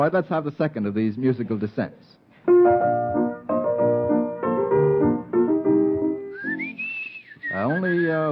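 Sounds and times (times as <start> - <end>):
speech: 0.0 - 3.3, 7.6 - 8.2
whistled waltz melody: 2.7 - 8.2.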